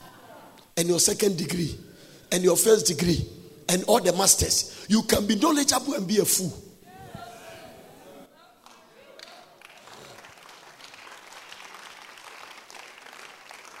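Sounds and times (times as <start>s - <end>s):
speech: 0.8s - 6.7s
audience at a sermon applauding: 8.7s - 13.7s.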